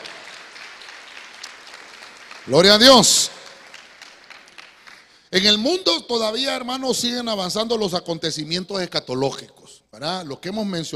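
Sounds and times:
audience applauding: 0:00.0 - 0:05.2
speech: 0:02.4 - 0:03.4, 0:05.3 - 0:10.9.

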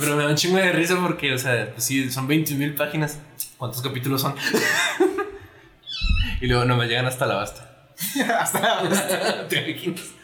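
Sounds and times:
speech: 0:00.0 - 0:05.0, 0:06.4 - 0:10.2
laughter: 0:04.4 - 0:05.6, 0:08.0 - 0:10.0
cat yowling: 0:05.9 - 0:06.4
low thump: 0:06.0 - 0:06.7.

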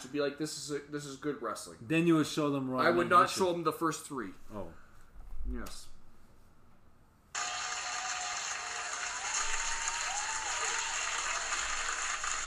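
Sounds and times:
speech: 0:00.0 - 0:04.8, 0:05.5 - 0:05.9
crowd applauding: 0:07.4 - 0:12.4.

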